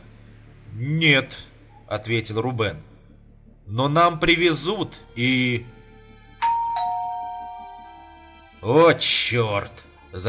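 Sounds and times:
speech: 0:00.8 - 0:02.9, 0:03.7 - 0:05.7, 0:08.6 - 0:10.2
two-tone ding-dong doorbell: 0:06.4 - 0:08.3.

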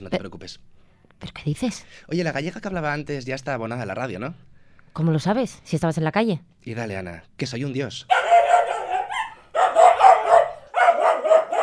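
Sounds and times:
speech: 0:00.0 - 0:08.2
dogs barking: 0:08.1 - 0:11.6.

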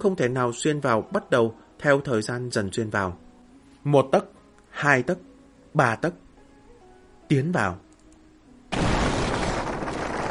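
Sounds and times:
speech: 0:00.0 - 0:06.2, 0:07.3 - 0:07.8
deafening explosion of a meteorite with roaring rumble: 0:08.8 - 0:10.2.

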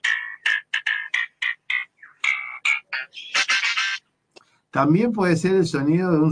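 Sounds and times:
lyrebird mimicking electronic instrument sounds: 0:00.0 - 0:04.1
speech: 0:04.7 - 0:06.2.

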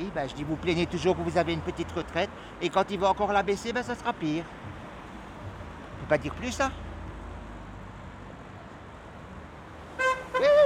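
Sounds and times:
speech: 0:00.2 - 0:04.8, 0:06.1 - 0:06.8
car horn honking at a street protest in Calais: 0:10.0 - 0:10.6.

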